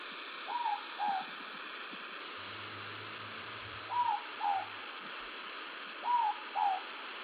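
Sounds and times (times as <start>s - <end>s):
faint night noise: 0.0s - 7.2s
morepork owl two-note call: 0.5s - 1.3s, 3.8s - 4.8s, 6.0s - 6.9s.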